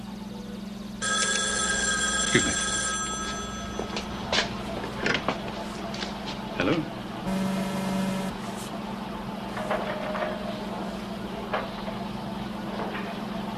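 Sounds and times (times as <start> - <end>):
pinball machine humming and buzzing: 0.0 - 13.5
speech: 2.3 - 2.6, 6.7 - 6.9
brief pinball machine electronic tones: 7.3 - 8.4.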